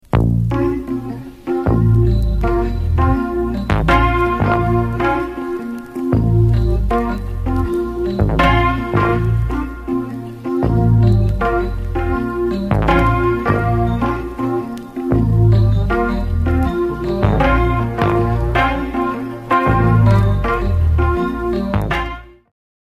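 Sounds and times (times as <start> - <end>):
Rhodes intro: 0.6 - 22.3.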